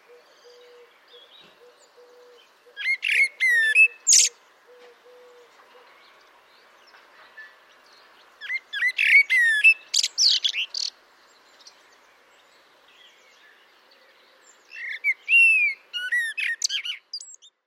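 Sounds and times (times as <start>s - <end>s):
common blackbird twittering and whistling: 2.8s - 4.3s, 8.4s - 10.9s, 14.7s - 17.5s.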